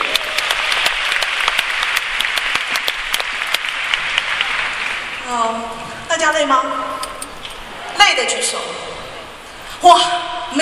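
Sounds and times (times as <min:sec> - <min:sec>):
applause from a sizable audience at a company training course: 0:00.0 - 0:05.3
speech: 0:06.3 - 0:06.8, 0:08.0 - 0:09.0, 0:09.8 - 0:10.5.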